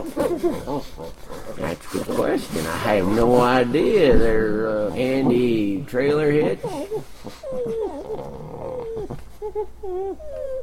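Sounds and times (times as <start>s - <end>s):
dogs giving short yelping whines: 0.0s - 1.8s, 6.3s - 10.6s
dogs whimpering and whining: 0.0s - 10.6s
speech: 0.2s - 7.8s.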